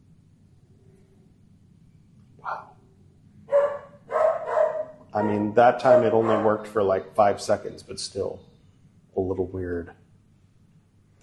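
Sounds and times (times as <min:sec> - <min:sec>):
dog barking: 0:03.5 - 0:06.7
speech: 0:05.2 - 0:08.5, 0:09.2 - 0:10.0.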